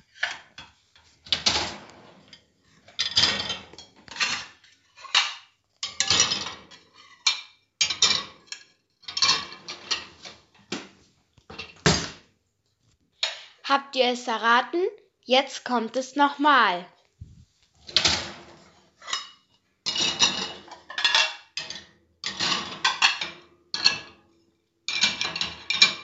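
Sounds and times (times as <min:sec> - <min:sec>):
dishes and cutlery clattering loaded into a dishwasher rack: 0:00.0 - 0:10.8, 0:11.5 - 0:12.2, 0:17.9 - 0:26.0
speech: 0:13.7 - 0:17.0.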